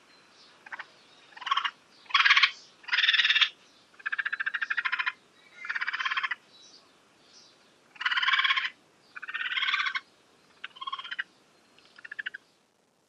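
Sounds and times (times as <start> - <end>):
Northern Raccoon chattering: 0.6 - 6.4, 7.9 - 12.4.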